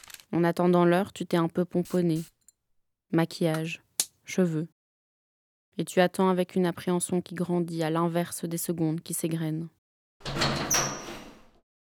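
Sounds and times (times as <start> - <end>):
speech: 0.3 - 2.4, 3.1 - 4.8, 5.8 - 10.6
heavy prison cell door sliding open with metallic grind and clank: 10.2 - 11.6.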